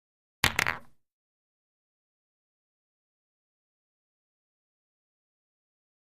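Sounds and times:
billiard ball dropping: 0:00.4 - 0:01.0.

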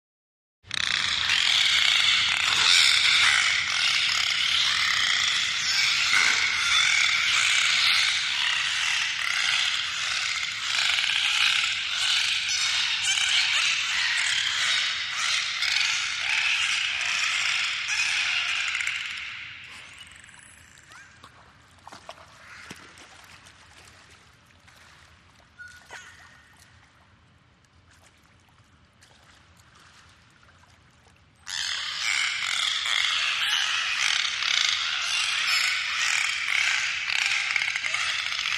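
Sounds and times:
dolphins vocalizing: 0:00.7 - 0:21.4, 0:31.4 - 0:38.5.

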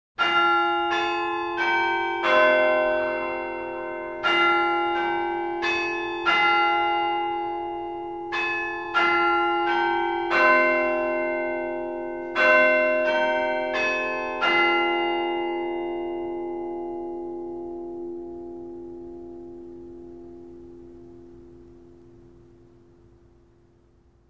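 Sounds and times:
school bell in a bell tower at St Pauls: 0:00.2 - 0:23.5.

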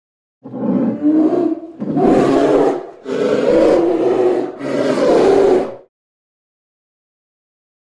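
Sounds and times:
bear roaring: 0:00.4 - 0:05.9.

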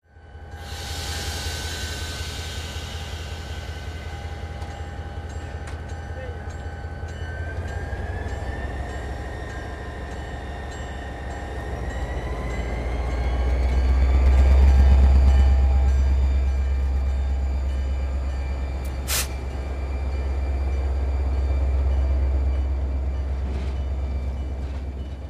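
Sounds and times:
train station ambience: 0:00.0 - 0:25.2.

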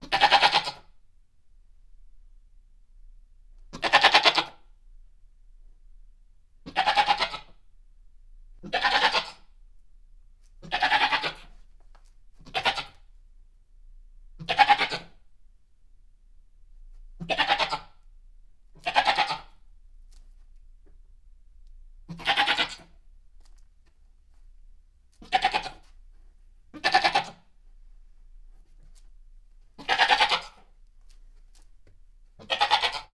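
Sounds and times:
goats bleating: 0:00.0 - 0:00.9, 0:03.7 - 0:04.6, 0:06.6 - 0:07.6, 0:08.6 - 0:09.5, 0:10.6 - 0:11.5, 0:12.4 - 0:13.0, 0:14.4 - 0:15.2, 0:17.2 - 0:18.0, 0:18.8 - 0:19.6, 0:22.1 - 0:23.0, 0:25.2 - 0:25.9, 0:26.7 - 0:27.5, 0:29.8 - 0:30.7, 0:32.4 - 0:33.1.

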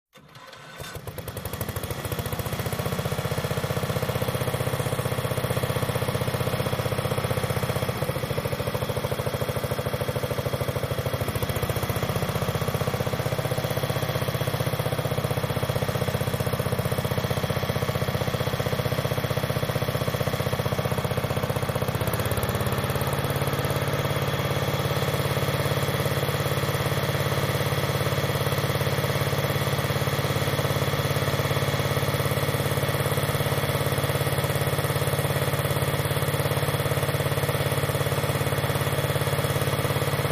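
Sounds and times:
water pump running: 0:01.0 - 0:40.2.

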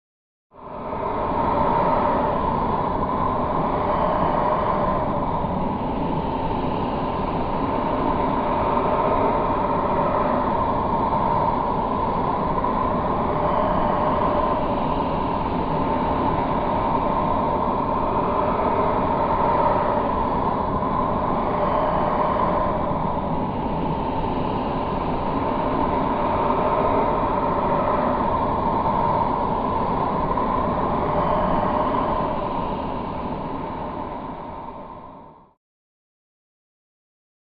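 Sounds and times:
horror growling ambience: 0:00.6 - 0:35.5.

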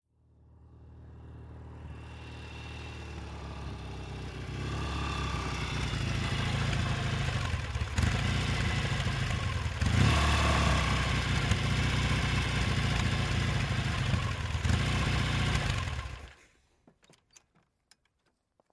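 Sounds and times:
Norton motorcycle engine at medium speed: 0:00.4 - 0:16.4.

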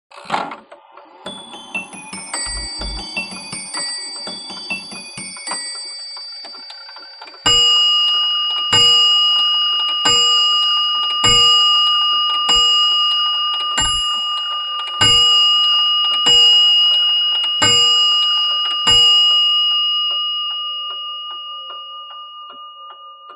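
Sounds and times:
bracket clock chimes ringing: 0:01.2 - 0:23.3.

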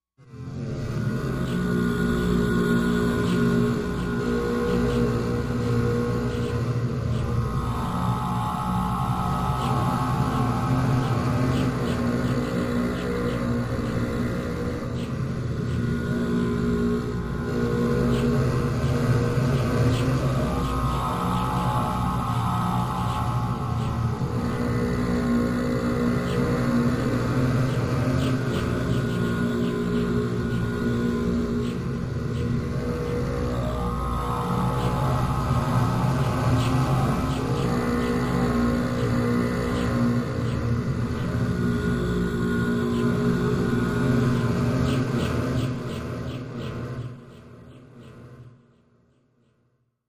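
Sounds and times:
deep eerie drone: 0:00.2 - 0:49.7.

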